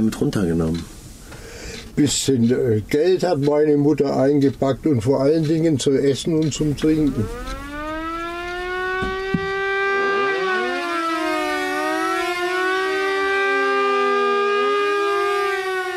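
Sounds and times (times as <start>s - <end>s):
speech: 0.0s - 1.0s, 2.0s - 7.6s
air raid warning siren wailing: 6.9s - 15.9s.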